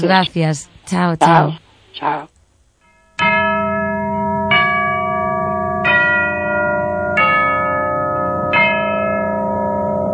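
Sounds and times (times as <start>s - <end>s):
speech: 0.0s - 2.3s
deep church bell tolling: 2.8s - 10.1s.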